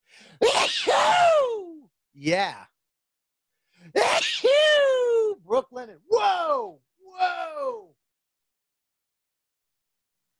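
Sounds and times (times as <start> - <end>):
short breathy intake before a sneeze: 0.0 - 0.4
loud sneeze trailing into a drawn-out voiced cry: 0.4 - 1.4, 3.9 - 4.6
speech: 2.2 - 2.7, 3.8 - 7.8.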